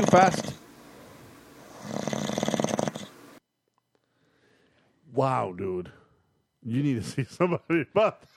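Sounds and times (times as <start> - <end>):
speech: 0.0 - 0.5, 5.2 - 6.0, 6.6 - 8.3
loud rattling snore: 0.0 - 0.6, 1.6 - 3.2.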